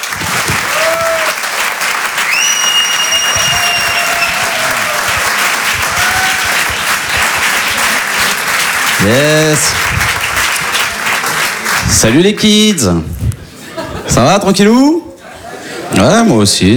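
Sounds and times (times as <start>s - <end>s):
comedy club audience applause at a Paris theatre: 0.0s - 12.8s
audience whistles: 2.2s - 4.7s
speech: 9.0s - 10.1s, 11.9s - 13.3s, 14.1s - 15.0s, 15.9s - 16.7s
laughter: 13.3s - 16.4s.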